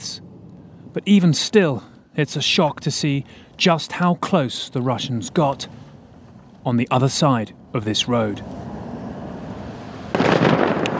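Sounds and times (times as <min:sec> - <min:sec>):
speech: 0:01.0 - 0:05.9, 0:06.6 - 0:08.6
controlled demining blast in a Ukrainian city: 0:10.1 - 0:10.9.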